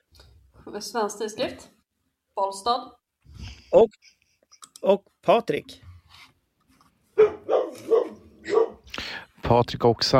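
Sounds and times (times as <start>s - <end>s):
speech: 0.7s - 1.8s, 2.4s - 4.2s, 4.8s - 5.8s, 9.5s - 10.1s
dog barking: 7.2s - 8.9s.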